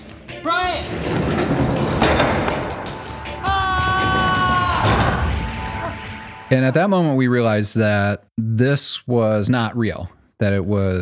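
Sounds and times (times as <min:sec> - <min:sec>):
dense rumbling commotion: 0:00.6 - 0:06.4
man yelling while pulled through door: 0:03.4 - 0:06.0
speech: 0:06.5 - 0:11.0.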